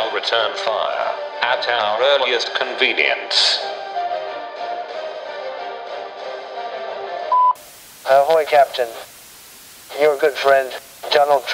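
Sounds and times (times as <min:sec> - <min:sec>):
speech: 0:00.2 - 0:03.7, 0:08.1 - 0:09.1, 0:09.9 - 0:11.5
answering machine beep: 0:07.3 - 0:07.6
line hiss: 0:07.6 - 0:11.5.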